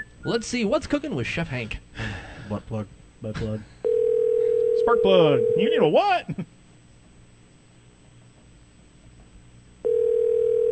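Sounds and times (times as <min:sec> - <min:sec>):
faint noise: 0:00.0 - 0:10.7
speech: 0:00.2 - 0:03.8, 0:04.8 - 0:06.6
telephone line tone: 0:03.8 - 0:05.9, 0:09.8 - 0:10.7.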